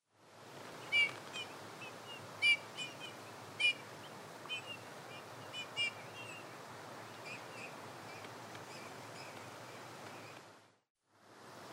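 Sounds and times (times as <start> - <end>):
faint background hiss: 0.1 - 11.7
Eurasian bullfinch piping call notes, Pyrrhula pyrrhula: 0.8 - 10.4.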